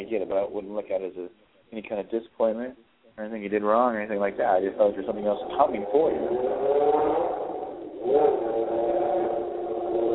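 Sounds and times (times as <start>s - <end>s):
speech: 0.1s - 6.9s, 8.0s - 8.5s
passing car engine revving: 4.3s - 10.1s.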